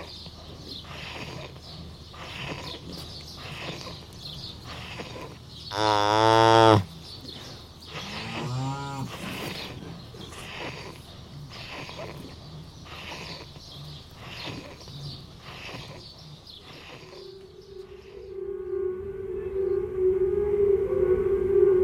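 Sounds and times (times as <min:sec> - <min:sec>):
calf breathing with difficulty: 0:00.0 - 0:05.8, 0:06.7 - 0:18.3
steady droning tone: 0:17.4 - 0:21.8.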